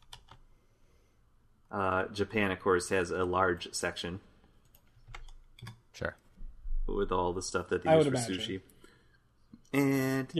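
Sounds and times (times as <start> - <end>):
computer keyboard keys being pressed: 0.0 - 0.4, 4.6 - 5.8
speech: 1.7 - 4.3, 6.0 - 6.2, 6.9 - 8.7, 9.7 - 10.3.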